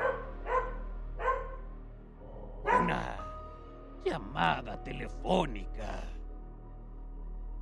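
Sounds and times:
dog barking: 0.0 - 1.6, 2.6 - 3.2
speech: 4.0 - 6.2.

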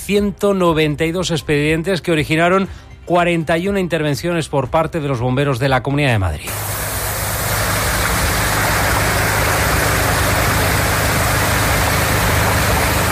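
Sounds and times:
speech: 0.1 - 6.8
water pumps droning while draining flooded garages: 6.5 - 13.0.

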